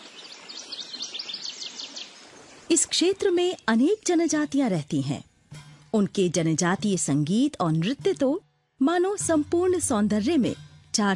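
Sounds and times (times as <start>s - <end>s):
birds chirping: 0.0s - 4.4s
speech: 2.7s - 5.3s, 5.9s - 11.1s.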